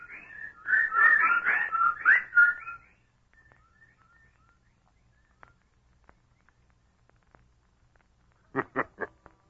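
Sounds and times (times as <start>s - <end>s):
birds chattering and whistling: 0.0s - 7.0s.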